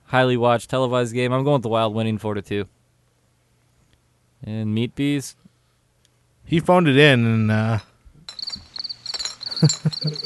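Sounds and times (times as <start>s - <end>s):
speech: 0.1s - 2.8s, 4.4s - 5.5s, 6.5s - 7.9s, 9.6s - 10.2s
crickets chirping: 8.3s - 10.2s.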